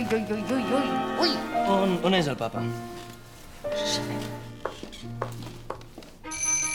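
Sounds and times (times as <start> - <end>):
speech: 0.2 - 3.0
alarm clock on a bedside table ringing with electronic tones: 6.3 - 6.7.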